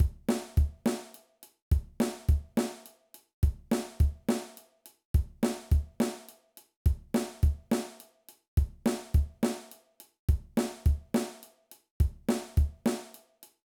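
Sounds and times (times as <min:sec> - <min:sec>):
drum beat: 0:00.0 - 0:01.1, 0:01.7 - 0:02.8, 0:03.4 - 0:04.5, 0:05.2 - 0:06.2, 0:06.9 - 0:08.0, 0:08.6 - 0:09.7, 0:10.3 - 0:11.4, 0:12.0 - 0:13.1.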